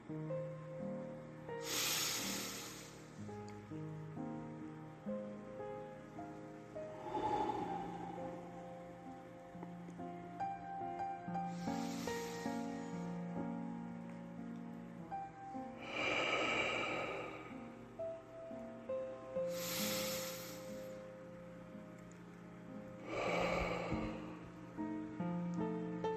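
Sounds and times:
steady music: 0:00.0 - 0:26.1
person inhaling slowly through the nose: 0:01.6 - 0:03.1, 0:07.0 - 0:08.7, 0:11.5 - 0:13.2, 0:19.5 - 0:21.0, 0:23.0 - 0:24.4.

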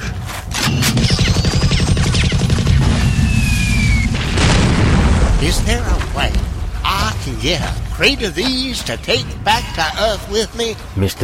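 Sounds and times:
rapid burst of heavy booming shots from newfangled sci-fi guns: 0:00.6 - 0:09.8
rumbling tail of sci-fi gunfire: 0:01.5 - 0:11.0
whistling descending high-pitched zips from sci-fi guns: 0:02.8 - 0:04.4
speech: 0:05.5 - 0:06.4, 0:07.3 - 0:11.2.

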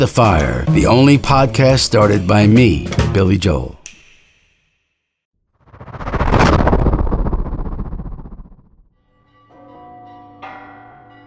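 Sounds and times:
speech: 0:00.0 - 0:03.8
loud rumbling roar: 0:05.7 - 0:08.6
church bells ringing in alarm: 0:09.6 - 0:11.2.

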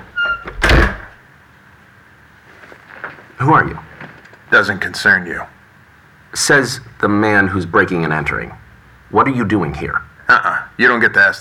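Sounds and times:
door hinge squeak: 0:00.0 - 0:01.2
speech: 0:03.4 - 0:03.9, 0:04.5 - 0:05.6, 0:06.3 - 0:11.3.

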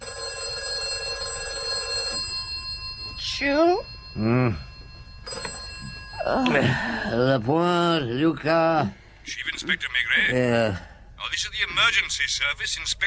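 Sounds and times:
telephone ringing in trilling bursts: 0:00.0 - 0:07.6
low hum: 0:01.5 - 0:13.0
speech: 0:03.4 - 0:04.7, 0:06.3 - 0:13.0.

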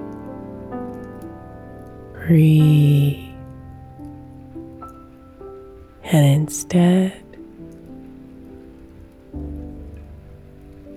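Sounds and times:
gentle rain falling: 0:00.0 - 0:10.9
speech: 0:02.3 - 0:03.3, 0:06.1 - 0:07.2.

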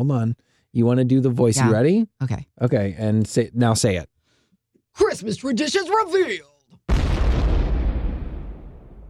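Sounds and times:
speech: 0:00.0 - 0:04.1, 0:05.0 - 0:06.9
loud booming explosion with heavy low-end rumble: 0:06.9 - 0:09.0.

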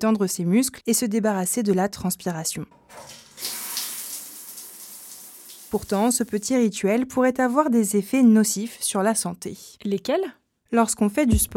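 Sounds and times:
speech: 0:00.0 - 0:03.6, 0:05.7 - 0:11.5
shower water spraying: 0:03.0 - 0:06.4.

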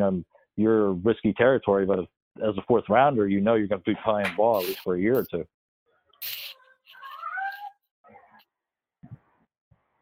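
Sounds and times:
speech: 0:00.0 - 0:05.6, 0:06.2 - 0:06.4
cat meowing: 0:06.3 - 0:08.4.

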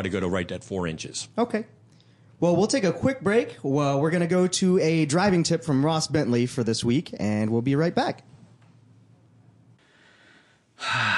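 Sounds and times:
speech: 0:00.0 - 0:01.8, 0:02.4 - 0:08.3, 0:10.8 - 0:11.1
deep breath in and out: 0:09.8 - 0:11.1.

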